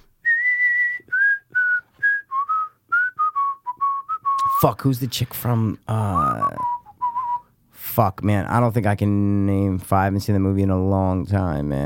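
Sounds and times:
person whistling a short tune: 0.2 - 4.7, 6.0 - 7.5
speech: 4.6 - 6.7, 8.0 - 11.8.

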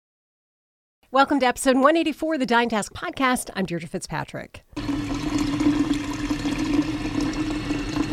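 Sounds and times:
speech: 1.1 - 5.1
water filling a giant water-cooler bottle in a newsroom: 4.8 - 8.1.

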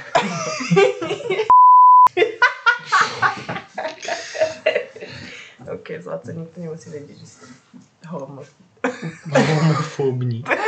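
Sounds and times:
several people in lively laughing conversation: 0.0 - 5.8, 8.8 - 10.6
censorship bleep over a name: 1.5 - 2.1
speech: 6.1 - 8.6, 9.3 - 10.6.

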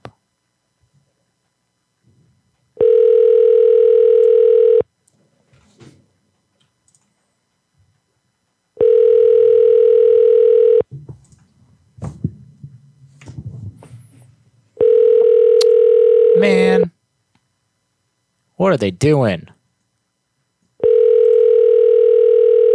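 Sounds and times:
ringback tone of an outgoing phone call: 2.8 - 4.8, 8.8 - 10.8, 14.8 - 16.9, 20.8 - 22.7
speech: 18.6 - 19.5.

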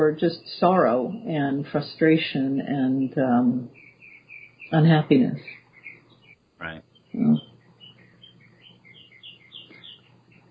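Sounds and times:
speech: 0.0 - 3.8, 4.7 - 5.6, 6.6 - 7.5
low hum: 0.0 - 10.4
birds chirping and singing: 3.7 - 10.4.

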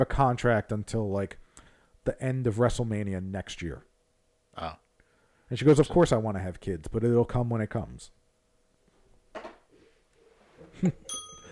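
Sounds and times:
speech: 0.0 - 1.4, 2.0 - 3.9, 4.6 - 4.8, 5.5 - 8.2, 10.8 - 11.2
small bell ringing: 11.1 - 11.5.

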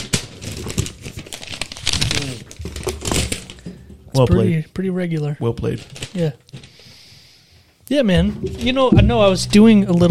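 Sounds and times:
standard-size sheet of notebook paper crumpling: 0.0 - 3.6, 5.7 - 6.8
speech: 4.2 - 6.5, 7.9 - 10.0.

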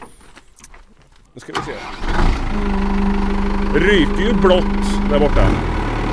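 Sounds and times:
speech: 1.4 - 3.0, 3.7 - 5.8
tractor diesel engine starting and idling: 1.4 - 6.1.

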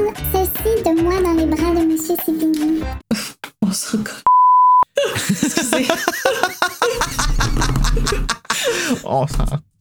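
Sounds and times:
speech: 0.1 - 3.0, 9.1 - 9.7
censorship bleep tone: 4.3 - 4.8
loud bubbly laughter: 5.0 - 9.3.

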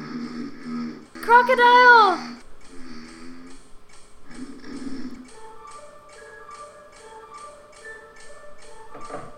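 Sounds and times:
clock ticking: 0.0 - 9.3
speech: 1.3 - 2.3
tuneful orchestral music with sustained notes: 5.4 - 9.3.

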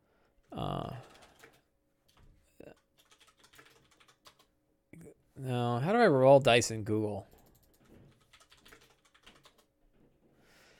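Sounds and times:
computer keyboard typing a web search: 0.9 - 4.5, 7.3 - 9.7
speech: 5.4 - 7.3.

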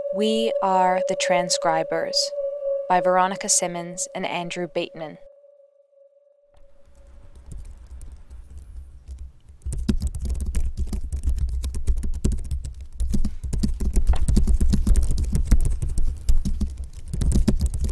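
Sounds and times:
speech: 0.1 - 5.3
fingers typing on a keyboard: 6.9 - 17.9.

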